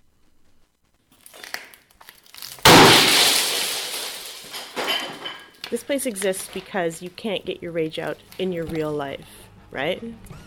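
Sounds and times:
glass debris settling: 0:01.2 - 0:06.6
glass being smashed in a rage room: 0:02.3 - 0:05.6
speech: 0:05.7 - 0:10.4.

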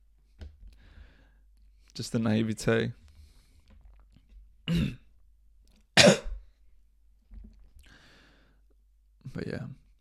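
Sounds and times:
speech: 0:02.0 - 0:03.0
person coughing: 0:04.7 - 0:05.1, 0:06.0 - 0:06.4.

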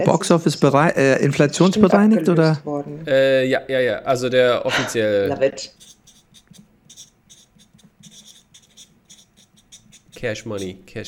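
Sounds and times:
speech: 0:00.0 - 0:05.9, 0:10.2 - 0:11.0
pens scratching across paper: 0:05.7 - 0:11.0.

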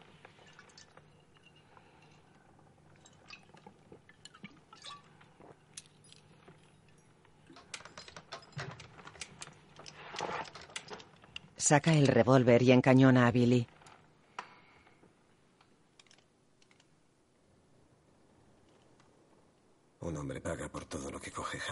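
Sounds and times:
whisky sloshing and dripping in a hip flask: 0:00.0 - 0:11.5
small sharp clinks of metal or glass: 0:04.9 - 0:10.0
speech: 0:11.7 - 0:13.7.

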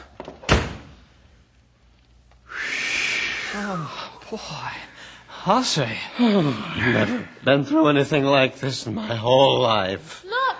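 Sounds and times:
door slamming shut: 0:00.4 - 0:00.9
steady breathy hiss: 0:02.4 - 0:07.2
speech: 0:03.5 - 0:10.3.

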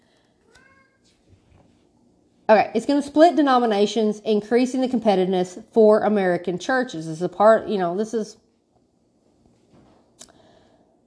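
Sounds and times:
cat meowing: 0:00.5 - 0:01.0
speech: 0:02.5 - 0:08.4.

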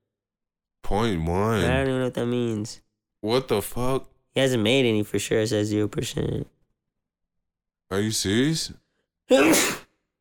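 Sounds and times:
speech: 0:00.9 - 0:06.6, 0:07.9 - 0:09.8
person sneezing: 0:09.3 - 0:10.0.

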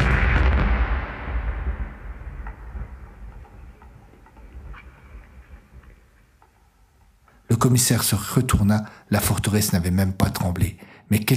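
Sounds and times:
violent explosion blast: 0:00.0 - 0:05.6
debris ticks: 0:02.2 - 0:07.4
speech: 0:07.6 - 0:11.3.

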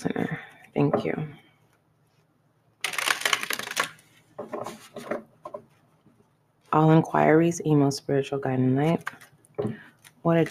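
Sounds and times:
speech: 0:00.8 - 0:01.4, 0:06.7 - 0:10.4
deck of cards riffle-shuffled: 0:02.8 - 0:04.1.

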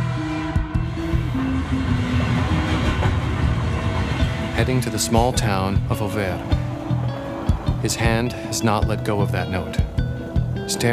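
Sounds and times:
train rolling along rails toward Auvers: 0:00.0 - 0:10.6
speech: 0:04.6 - 0:06.6, 0:07.8 - 0:10.0, 0:10.7 - 0:10.9.

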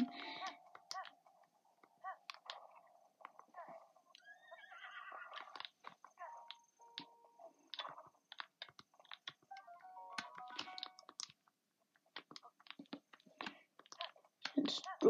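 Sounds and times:
scattered clicks: 0:00.0 - 0:04.3, 0:05.3 - 0:15.0
quick clattering video game hoof clops: 0:00.0 - 0:15.0
video game horse whinnying: 0:04.2 - 0:05.6.

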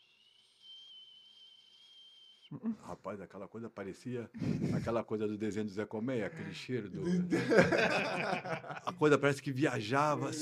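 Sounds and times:
person whistling a long high note imitating a father's call whistle: 0:00.0 - 0:02.5
speech: 0:02.5 - 0:10.4
laughter: 0:06.4 - 0:09.2.

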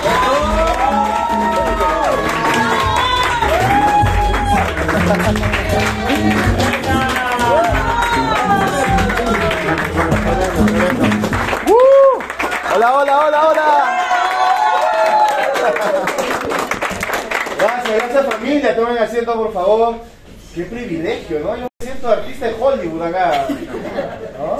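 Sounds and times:
large audience applauding: 0:00.0 - 0:18.4
speech: 0:18.6 - 0:24.5
laughter: 0:23.3 - 0:24.5.

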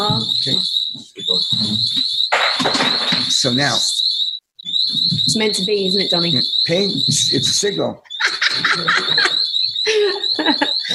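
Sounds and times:
shrill steady electronic alarm tone: 0:00.0 - 0:10.9
speech: 0:00.1 - 0:02.8, 0:03.4 - 0:04.0, 0:04.9 - 0:09.4
people laughing: 0:08.1 - 0:10.9.

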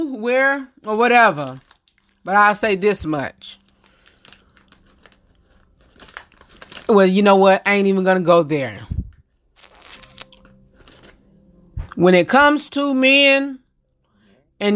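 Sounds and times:
speech: 0:00.0 - 0:03.6, 0:06.9 - 0:09.0, 0:12.0 - 0:13.6
crinkly snack-bag rustles: 0:00.8 - 0:07.2, 0:09.5 - 0:11.3
crunching and chewing of potato chips: 0:01.4 - 0:02.3, 0:03.4 - 0:07.0, 0:09.5 - 0:11.3.

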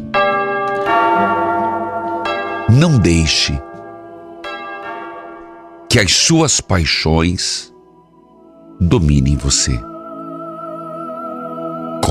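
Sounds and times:
bell rung by the sacristan: 0:00.1 - 0:07.1
speech: 0:02.7 - 0:03.7, 0:05.9 - 0:07.7, 0:08.8 - 0:09.9.

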